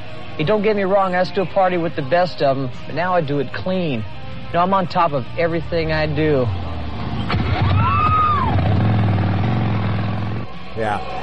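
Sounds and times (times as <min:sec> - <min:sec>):
speech: 0:00.4 - 0:06.7, 0:10.8 - 0:11.2
motorcycle engine revving and pulling away: 0:06.4 - 0:10.5.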